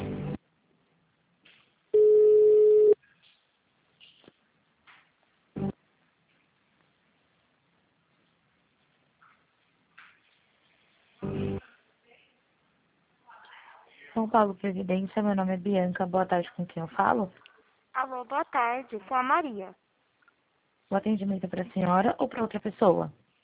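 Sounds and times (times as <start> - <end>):
telephone line ringback tone during call transfer: 2.0 - 3.0
speech: 14.2 - 17.5, 18.1 - 19.8, 20.9 - 23.2.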